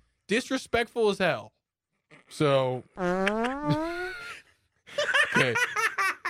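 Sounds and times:
speech: 0.3 - 1.6, 2.3 - 4.0, 5.4 - 5.8
person making a fart noise with their mouth: 3.0 - 4.2
laughter: 3.7 - 6.2.

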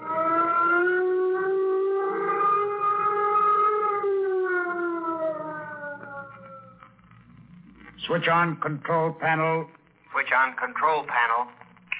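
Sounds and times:
flight warning signal siren before a nuclear jet launch: 0.0 - 7.7
speech: 8.1 - 11.6.

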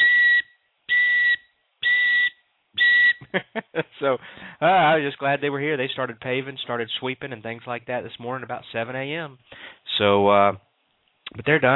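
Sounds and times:
truck reversing beeper electronic beeps: 0.0 - 3.2
speech: 3.3 - 10.7, 11.3 - 11.7.

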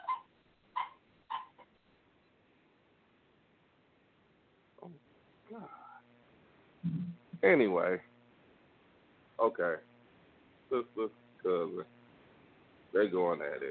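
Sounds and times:
dog yelping: 0.0 - 1.7
low hiss: 0.3 - 13.7
speech: 4.9 - 5.8, 6.8 - 8.1, 9.4 - 9.9, 10.7 - 12.0, 12.9 - 13.7.

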